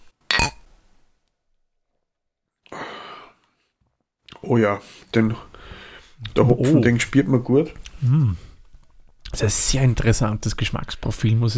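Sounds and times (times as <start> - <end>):
beer glasses clinking in a toast: 0.3 - 0.7
speech: 4.4 - 8.5, 9.3 - 11.5.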